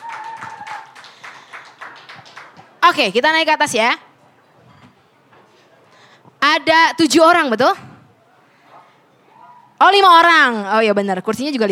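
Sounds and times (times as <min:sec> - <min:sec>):
audience clapping at a music event: 0:00.0 - 0:02.8
speech: 0:02.9 - 0:04.0, 0:06.6 - 0:07.9, 0:09.8 - 0:11.7.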